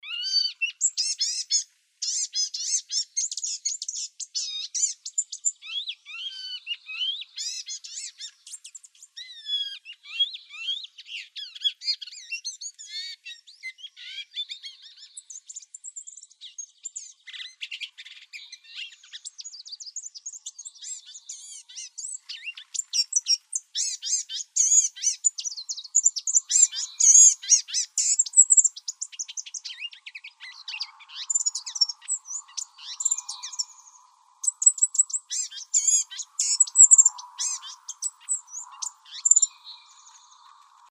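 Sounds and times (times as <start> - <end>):
wrens, kinglets and gnatcatchers calling: 0.0 - 40.8.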